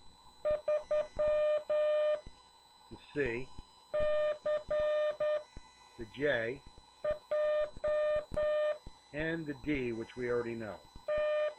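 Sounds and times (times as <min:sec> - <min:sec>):
Morse code tones sending a digit of a ham radio call sign: 0:00.4 - 0:02.2, 0:03.9 - 0:05.4, 0:07.0 - 0:11.5
speech: 0:02.9 - 0:03.6, 0:06.0 - 0:06.7, 0:09.1 - 0:10.9.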